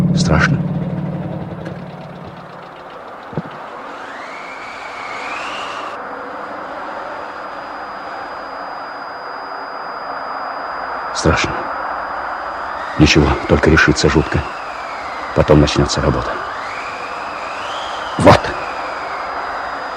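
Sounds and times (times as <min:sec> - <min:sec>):
early aircraft engine starting up: 0:00.0 - 0:19.9
speech: 0:11.2 - 0:11.6, 0:13.0 - 0:14.6, 0:15.4 - 0:16.4.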